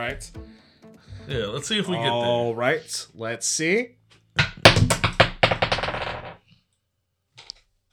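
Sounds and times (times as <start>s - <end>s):
speech: 0.0s - 0.4s, 1.3s - 4.0s
dice rattling across a hard surface: 4.9s - 6.4s.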